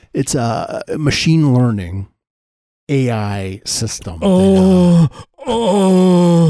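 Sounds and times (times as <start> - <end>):
speech: 0.2 - 2.1, 2.9 - 6.4
person giving a loud sustained moaning groan: 4.2 - 6.4.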